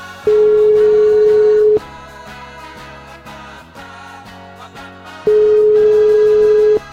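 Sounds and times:
upbeat music: 0.0s - 6.9s
telephone line ringing tone while calling: 0.1s - 1.8s, 5.3s - 6.9s.

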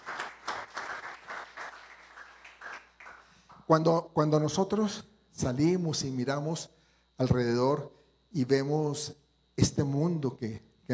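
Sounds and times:
audience applauding: 0.0s - 3.6s
speech: 3.7s - 10.9s.

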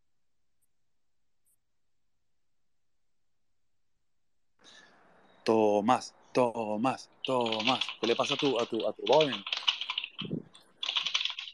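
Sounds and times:
speech: 5.4s - 9.6s
typing on a computer keyboard: 7.2s - 11.5s.

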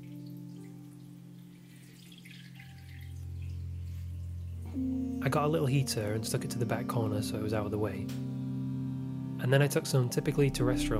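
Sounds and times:
water pouring into an aquarium tank: 1.4s - 4.7s
speech: 4.8s - 8.4s, 9.4s - 10.9s.

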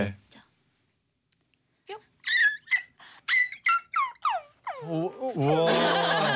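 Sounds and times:
speech: 0.0s - 0.2s, 4.8s - 6.3s
person imitating a whimpering puppy getting an injection: 2.2s - 5.4s
laughter: 4.9s - 6.3s.

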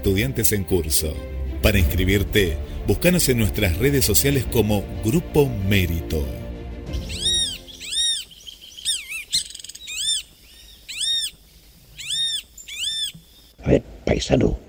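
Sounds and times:
speech: 0.0s - 6.4s, 14.2s - 14.6s
southern lapwing shrill calling: 6.9s - 13.6s.

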